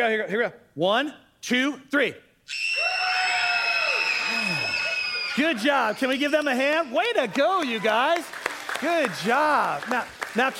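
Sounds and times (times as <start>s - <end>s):
speech: 0.0s - 3.0s, 5.4s - 10.5s
large group of children screaming together: 2.7s - 7.9s.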